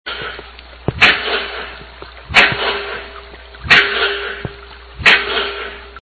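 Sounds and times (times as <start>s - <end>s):
pile driving: 0.1s - 6.0s.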